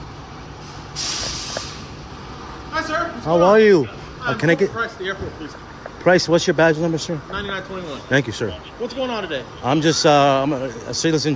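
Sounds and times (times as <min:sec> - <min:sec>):
60-passenger shuttle bus air brakes hissing: 0:00.5 - 0:02.0
speech: 0:02.8 - 0:11.3.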